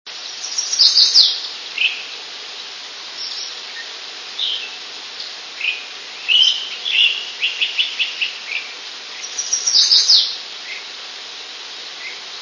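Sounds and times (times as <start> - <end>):
chestnut-sided warbler calling: 0.2 - 10.9, 11.9 - 12.3.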